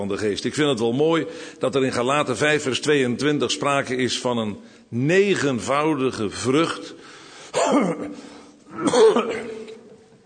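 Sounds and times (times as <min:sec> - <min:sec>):
speech: 0:00.0 - 0:08.2, 0:08.8 - 0:09.5
person clearing throat from hay fever: 0:07.6 - 0:10.0.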